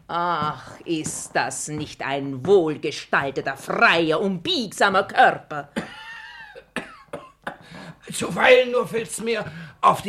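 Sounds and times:
speech: 0.1s - 6.0s, 8.1s - 10.0s
sharp harsh coughs: 5.6s - 8.0s.

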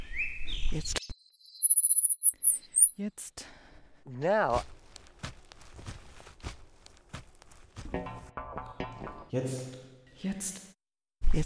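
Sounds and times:
speech: 0.7s - 1.0s, 3.0s - 4.8s, 9.3s - 10.7s
soft footsteps walking from sunlight into a forest: 4.6s - 8.4s.

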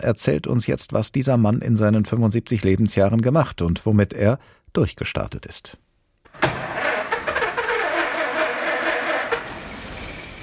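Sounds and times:
speech: 0.0s - 5.9s
old Ford Model T engine cranking and starting: 6.3s - 10.4s.

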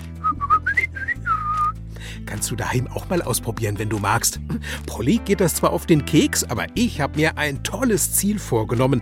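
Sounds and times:
artistic melodic whistling with gliding notes and quick trills: 0.2s - 1.8s
speech: 2.3s - 9.0s.

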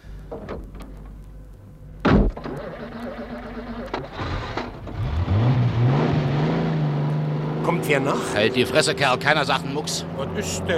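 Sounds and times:
car engine rising in pitch as the vehicle pulls away: 2.4s - 10.7s
speech: 7.7s - 10.7s.

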